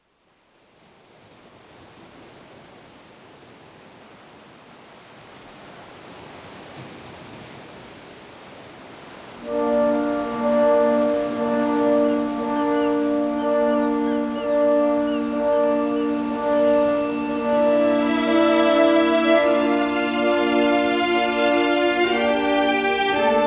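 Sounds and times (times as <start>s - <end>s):
orchestral music: 9.4s - 23.4s.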